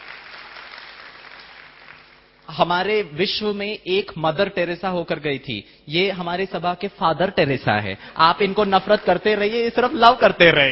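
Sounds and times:
audience at an assembly applauding: 0:00.0 - 0:02.4, 0:08.4 - 0:10.0
speech: 0:02.5 - 0:10.7.

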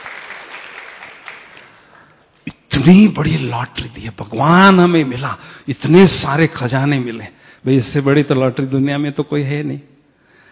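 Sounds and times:
audience applause: 0:00.0 - 0:02.1
speech: 0:02.8 - 0:09.9.

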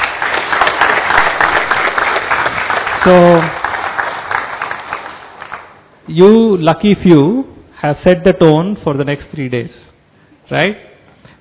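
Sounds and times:
audience applause: 0:00.0 - 0:05.8
speech: 0:03.0 - 0:03.6, 0:06.1 - 0:09.9, 0:10.5 - 0:10.9.

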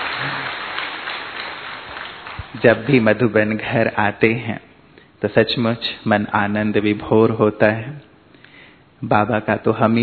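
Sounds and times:
audience clapping at a gathering: 0:00.0 - 0:03.4
speech: 0:02.6 - 0:04.6, 0:05.2 - 0:08.1, 0:09.0 - 0:10.0.

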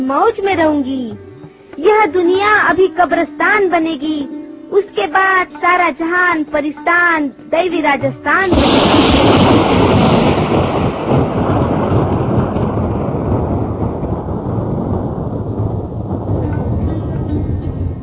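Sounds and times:
speech: 0:00.0 - 0:09.9
heavy ocean waves surging: 0:08.5 - 0:18.0.

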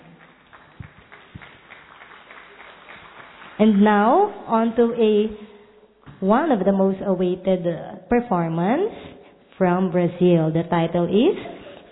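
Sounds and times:
crowd applauding: 0:00.0 - 0:03.8
speech: 0:03.6 - 0:05.5, 0:06.2 - 0:09.0, 0:09.6 - 0:11.9.

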